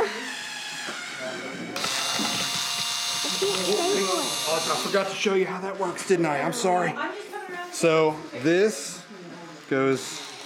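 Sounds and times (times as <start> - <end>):
power drill drilling into a wooden bat structure from a kit: 0.0 - 5.2
speech: 4.5 - 7.2, 7.8 - 9.0, 9.7 - 10.2.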